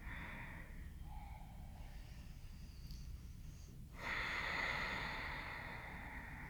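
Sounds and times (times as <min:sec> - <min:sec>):
deep breathing through the nose during a hip-lifting exercise: 0:00.0 - 0:06.4.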